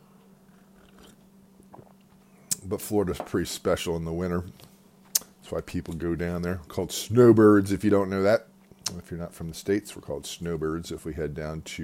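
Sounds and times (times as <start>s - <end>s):
person sipping coffee: 0.8s - 1.2s
speech: 2.7s - 4.7s, 5.5s - 11.8s.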